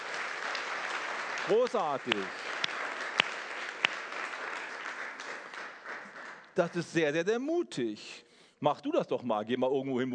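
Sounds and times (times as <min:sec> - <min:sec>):
church audience applause: 0:00.0 - 0:06.8
sharp loud claps: 0:00.0 - 0:07.0
speech: 0:01.5 - 0:02.5, 0:06.6 - 0:10.1.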